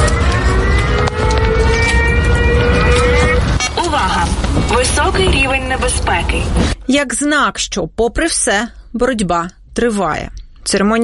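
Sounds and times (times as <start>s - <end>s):
air raid siren wailing: 0.0s - 6.6s
constant rumble of traffic or crowd noise: 0.0s - 8.0s
speech: 6.4s - 11.0s.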